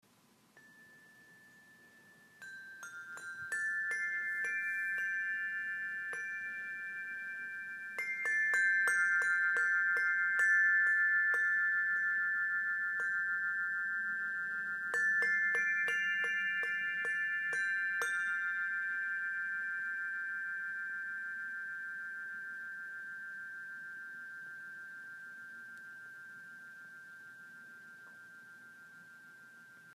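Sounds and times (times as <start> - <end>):
small tubular bells: 0.4 - 29.9.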